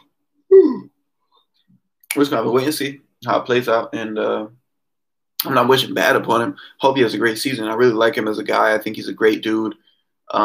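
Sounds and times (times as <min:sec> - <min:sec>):
short voiced yawn sliding downward in pitch: 0:00.5 - 0:00.9
speech: 0:02.2 - 0:04.6, 0:05.4 - 0:10.4.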